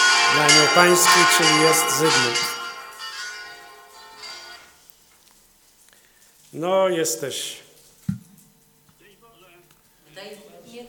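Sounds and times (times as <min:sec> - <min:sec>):
church bells from Mount Tabor ringing: 0:00.0 - 0:04.8
speech: 0:00.3 - 0:02.6, 0:06.5 - 0:08.2, 0:10.2 - 0:10.8.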